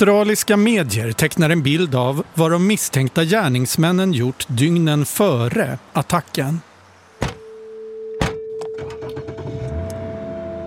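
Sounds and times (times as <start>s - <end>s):
speech: 0.0s - 7.3s
steady low car engine hum: 7.1s - 10.6s
car doors thudding in Australia: 7.2s - 7.4s, 8.2s - 9.6s.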